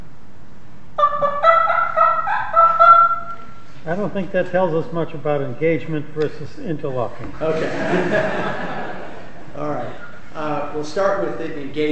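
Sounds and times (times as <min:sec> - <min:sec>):
turkey gobble made with a game call: 0:01.0 - 0:03.7
speech: 0:03.9 - 0:08.8, 0:09.6 - 0:11.8
laughter: 0:07.3 - 0:10.3.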